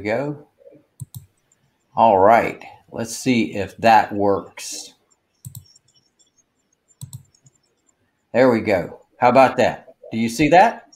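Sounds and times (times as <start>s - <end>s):
speech: 0.0s - 0.5s, 2.0s - 5.0s, 8.4s - 10.8s
faint computer mouse clicks while sharing a slide presentation: 1.0s - 1.9s, 5.1s - 8.0s.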